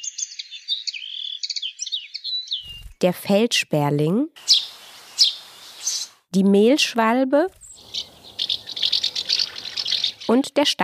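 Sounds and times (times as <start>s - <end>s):
common linnet singing a twittering song: 0.0s - 3.0s, 4.4s - 6.2s, 7.6s - 10.6s
speech: 3.0s - 4.5s, 6.3s - 8.1s, 10.3s - 10.8s.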